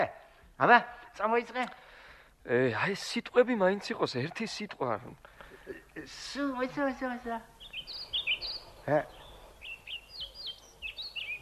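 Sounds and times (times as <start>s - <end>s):
speech: 0.0s - 8.0s, 8.8s - 9.2s
Eurasian blackbird singing: 7.4s - 11.3s.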